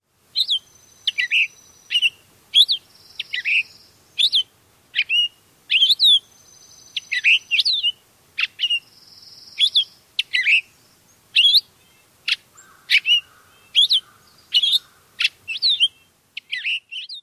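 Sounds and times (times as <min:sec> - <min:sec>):
Purple Finch giving vireo-like song in presence of a hawk: 0:00.3 - 0:17.2.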